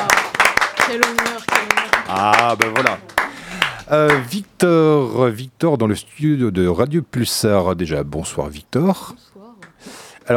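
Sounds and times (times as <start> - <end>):
a few people clapping in a studio: 0.0 - 4.4
speech: 0.9 - 1.3, 2.1 - 3.0, 3.9 - 10.3.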